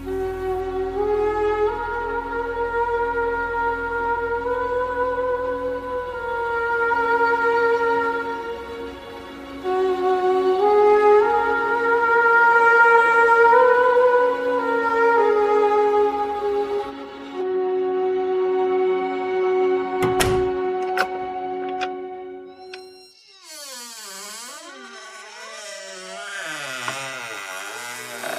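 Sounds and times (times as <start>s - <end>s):
deep brassy ancient carnyx or cornu horn: 0.0s - 22.5s.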